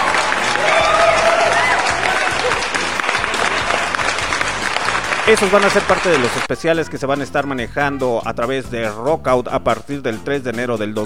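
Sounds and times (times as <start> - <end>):
crowd applauding: 0.0 - 6.5
speech: 5.3 - 11.0.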